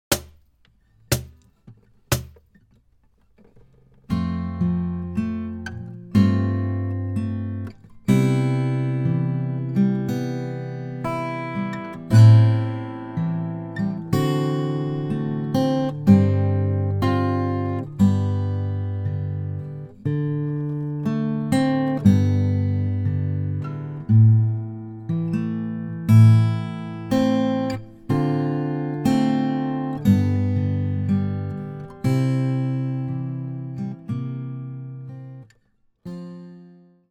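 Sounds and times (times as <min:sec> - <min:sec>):
guitar accompaniment: 0:00.8 - 0:37.0.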